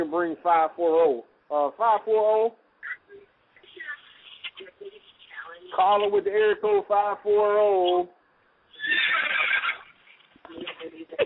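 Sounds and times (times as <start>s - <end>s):
speech: 0.0s - 2.6s, 5.7s - 8.2s
horse neighing: 8.7s - 10.0s.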